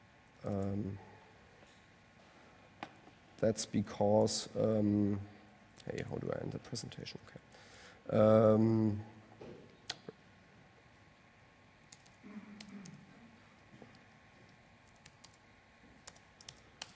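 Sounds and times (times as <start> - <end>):
speech: 0.4 - 1.1, 3.4 - 9.2
typing a command on a notebook computer keyboard: 11.9 - 13.0, 14.4 - 15.4, 16.0 - 16.9.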